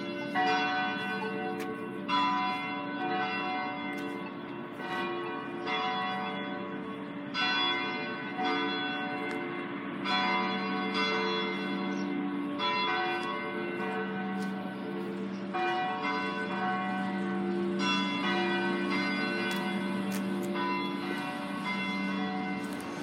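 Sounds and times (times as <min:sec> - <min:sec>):
church bells ringing: 0:00.0 - 0:23.0.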